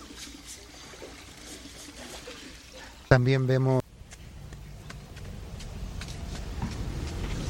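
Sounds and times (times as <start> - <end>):
water trickling from a public spout: 0.0 - 3.2
speech: 3.1 - 3.8.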